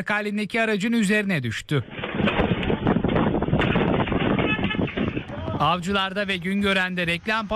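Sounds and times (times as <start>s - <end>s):
speech: 0.0s - 2.5s, 5.6s - 7.5s
strong gusting wind in Sarıyer during a cold wave: 1.8s - 7.5s.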